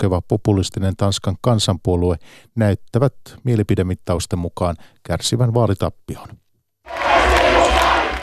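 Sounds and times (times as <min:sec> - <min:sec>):
speech: 0:00.0 - 0:06.4
large outdoor rally crowd shouting and cheering: 0:06.9 - 0:08.2.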